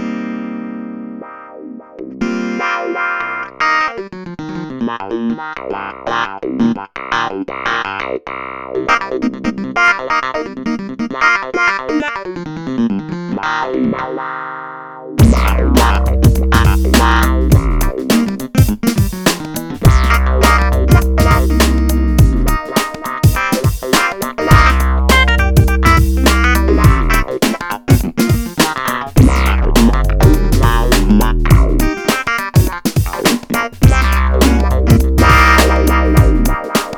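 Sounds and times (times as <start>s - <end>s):
damped wah clavinet on a Korg Radias-R synthesizer: 1.2s - 12.5s, 13.2s - 36.9s.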